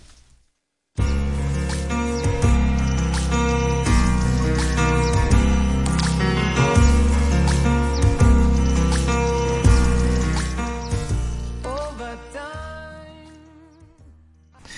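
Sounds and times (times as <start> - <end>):
soft sustained musical backing: 1.0 - 14.0
plinking water droplet sounds in song intro: 2.8 - 11.0.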